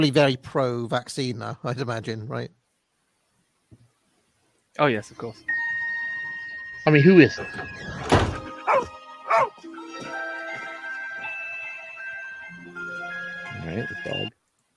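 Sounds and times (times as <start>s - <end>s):
speech: 0.0s - 2.6s, 4.8s - 5.6s, 6.8s - 10.2s, 13.6s - 14.4s
dog barking: 8.7s - 9.5s.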